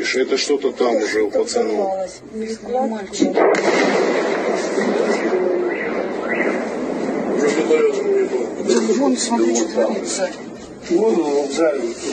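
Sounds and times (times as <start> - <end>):
speech: 0.1 - 4.2, 7.7 - 12.1
missile strike explosion on the western outskirts of Yevpatoria: 3.1 - 12.1.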